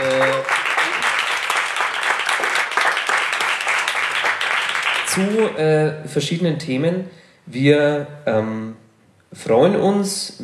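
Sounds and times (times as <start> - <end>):
audience applause: 0.0 - 5.5
speech: 5.2 - 10.4.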